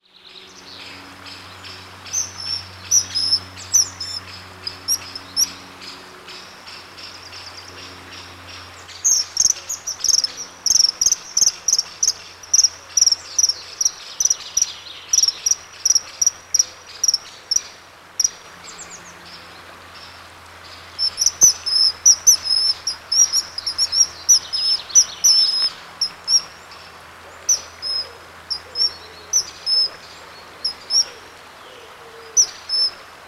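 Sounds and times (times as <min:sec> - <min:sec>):
kingfisher: 0:00.4 - 0:33.1.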